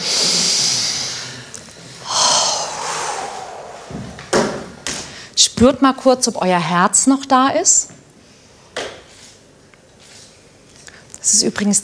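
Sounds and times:
person drawing a long deep breath in and exhaling: 0:00.0 - 0:05.4
speech: 0:05.6 - 0:08.0, 0:11.4 - 0:11.8.

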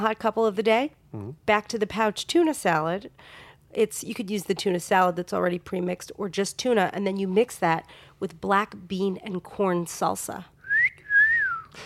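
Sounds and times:
speech: 0:00.0 - 0:10.5
woman whistling a brief clear note: 0:10.6 - 0:11.8.

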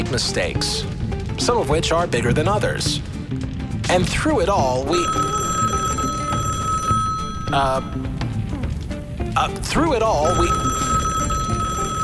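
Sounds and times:
speech: 0:00.1 - 0:05.4, 0:07.5 - 0:08.1, 0:09.4 - 0:10.9
old-style telephone bell ringing: 0:04.9 - 0:08.2, 0:10.2 - 0:12.0.

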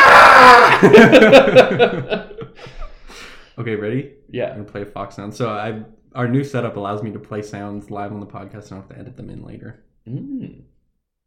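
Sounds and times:
voice imitating a cougar's mating scream: 0:00.0 - 0:00.8
laughter: 0:00.6 - 0:02.9
speech: 0:00.8 - 0:10.7.

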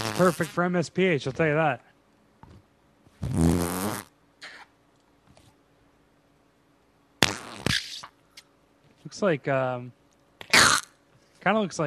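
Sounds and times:
loud buzzing fart-like squelch from a squeezed slime toy: 0:00.0 - 0:00.6, 0:03.2 - 0:04.7, 0:07.2 - 0:08.2, 0:10.4 - 0:11.0
speech: 0:00.2 - 0:01.9, 0:09.1 - 0:10.0, 0:11.4 - 0:11.8.

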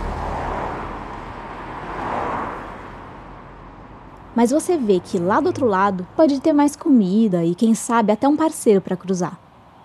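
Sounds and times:
vehicles speeding past on a road: 0:00.0 - 0:07.0
speech: 0:04.4 - 0:09.4.

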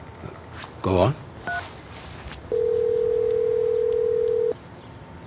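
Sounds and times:
speech: 0:00.8 - 0:01.6
steady mid-pitched telephone voicemail tone: 0:01.5 - 0:01.7, 0:02.5 - 0:04.6
quick clicks from the telephone handset: 0:02.6 - 0:04.6.

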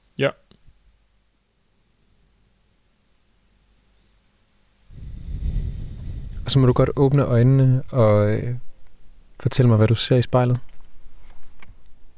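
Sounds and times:
speech: 0:00.2 - 0:00.4, 0:06.5 - 0:08.6, 0:09.4 - 0:10.7
faint low hiss: 0:04.6 - 0:12.1
deep breath during a guided relaxation exercise: 0:04.9 - 0:08.2.

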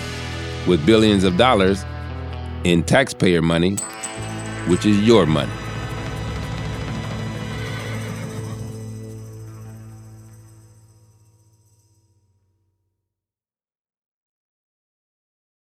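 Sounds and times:
speech: 0:00.7 - 0:01.9, 0:02.6 - 0:04.0, 0:04.7 - 0:05.6
long sustained tone: 0:03.8 - 0:11.7
horse whinnying: 0:06.6 - 0:09.0.

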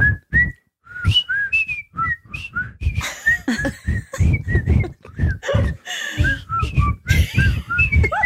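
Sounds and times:
several people whistling a bouncy TV theme tune: 0:00.0 - 0:08.2
people laughing: 0:03.0 - 0:06.5, 0:07.1 - 0:08.2.

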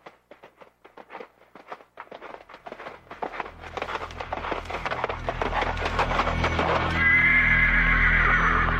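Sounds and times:
hoof clops on a hard surface: 0:00.0 - 0:07.0
horse whinnying: 0:05.4 - 0:08.7.

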